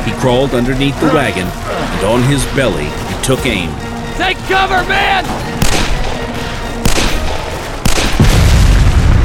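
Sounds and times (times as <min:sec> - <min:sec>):
speech: 0:00.0 - 0:05.6
bullets going off with sharp cracking impacts: 0:05.6 - 0:06.2, 0:06.8 - 0:08.3
makeshift bomb in a sack of ammunition exploding: 0:07.8 - 0:09.2.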